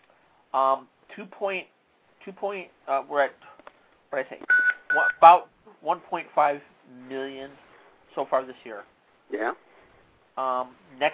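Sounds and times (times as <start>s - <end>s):
speech: 0.5s - 3.5s, 4.1s - 4.4s, 5.0s - 7.6s, 8.2s - 9.7s, 10.4s - 11.1s
short electronic beeps: 4.5s - 5.2s.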